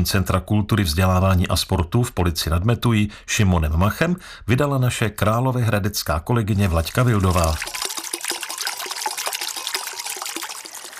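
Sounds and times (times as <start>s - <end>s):
speech: 0.0s - 7.9s
babbling water turning a small metal waterwheel: 6.6s - 10.9s.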